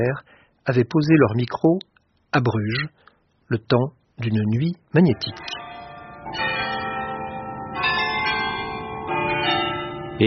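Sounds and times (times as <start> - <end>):
speech: 0.0 - 5.6
many church bells in Bruges ringing at once for a procession: 5.0 - 10.2.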